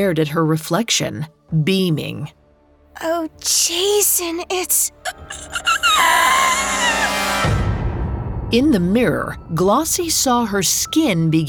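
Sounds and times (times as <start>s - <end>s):
speech: 0.0s - 2.4s, 3.0s - 7.6s, 8.5s - 11.4s
woman screaming: 5.1s - 7.7s.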